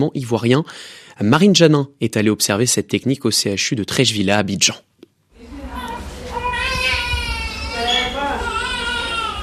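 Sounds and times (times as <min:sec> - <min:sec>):
speech: 0:00.0 - 0:04.9
babies crying in a room: 0:06.3 - 0:09.4.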